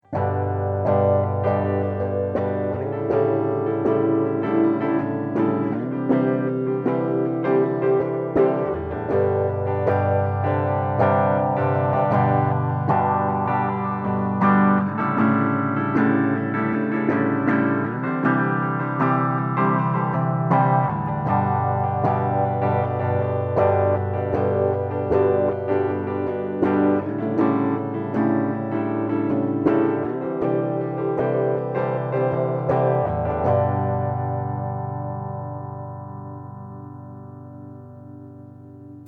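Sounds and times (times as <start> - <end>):
guitar through phase shifter with half depth and half feedback: 0.0 - 39.0.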